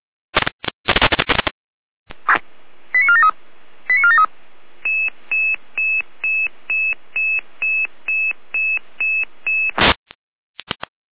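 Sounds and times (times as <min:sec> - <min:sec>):
burst of static: 0:00.3 - 0:01.5, 0:02.1 - 0:10.0
radio pager alerting tones: 0:02.3 - 0:03.3, 0:03.9 - 0:09.8.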